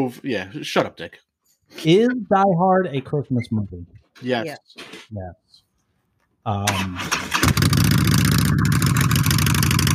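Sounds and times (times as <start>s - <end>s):
speech: 0.0s - 5.6s, 6.4s - 7.3s
motorcycle engine warming up: 6.7s - 9.9s.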